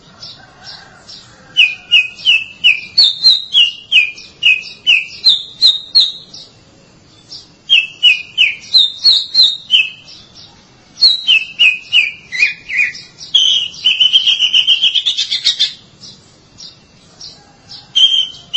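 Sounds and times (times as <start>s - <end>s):
Oriental magpie-robin singing: 0.2s - 18.5s.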